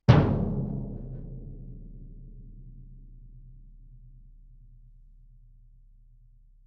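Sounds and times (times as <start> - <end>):
bass drum struck fortissimo: 0.0 - 3.6.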